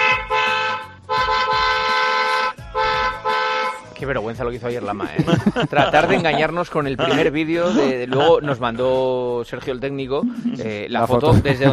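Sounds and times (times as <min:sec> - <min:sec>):
car horn honking: 0:00.0 - 0:03.9
speech: 0:04.0 - 0:11.7
laughter: 0:05.0 - 0:08.8, 0:10.2 - 0:11.7.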